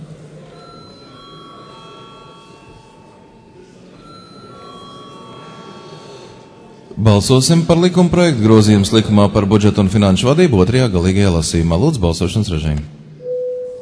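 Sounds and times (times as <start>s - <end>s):
low murmur of a large parliament hall: 0.0s - 13.8s
electric bell of a parliament chamber ringing before a vote: 0.4s - 7.8s
speech: 7.0s - 13.0s.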